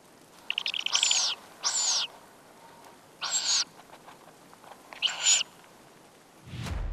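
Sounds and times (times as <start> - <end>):
two-week-old tawny owlets calling in a nest box: 0.5 - 2.1, 3.2 - 3.7, 5.0 - 5.5.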